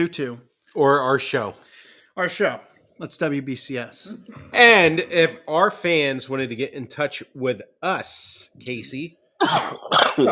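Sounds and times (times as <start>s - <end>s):
speech: 0.0s - 10.2s
harsh raspy coughs: 9.4s - 10.2s.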